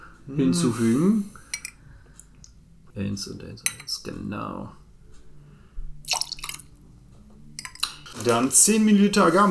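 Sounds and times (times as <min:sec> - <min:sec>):
speech: 0:00.3 - 0:01.4, 0:03.0 - 0:04.8, 0:08.2 - 0:09.4
25 milliliters of lemon juice pouring into a cocktail glass: 0:06.1 - 0:06.7.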